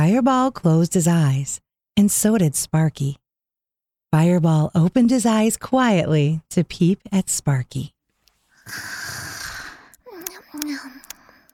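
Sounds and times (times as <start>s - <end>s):
speech: 0.1s - 3.2s, 4.1s - 8.0s, 8.7s - 9.2s
person imitating snoring: 8.6s - 10.8s.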